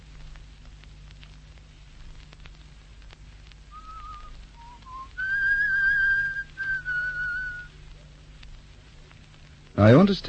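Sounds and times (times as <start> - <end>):
faint hum: 0.0 - 10.2
person whistling a short melodic tune: 3.8 - 7.7
speech: 9.8 - 10.2.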